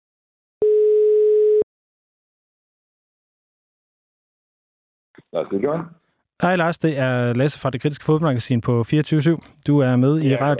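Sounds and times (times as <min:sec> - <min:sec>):
telephone ringing tone of an outgoing call: 0:00.6 - 0:01.7
speech: 0:05.3 - 0:10.5.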